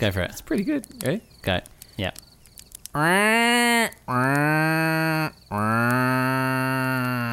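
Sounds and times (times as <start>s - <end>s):
speech: 0.0s - 2.3s, 2.9s - 7.2s
person outdoors in nature imitating a crow call: 2.9s - 7.3s.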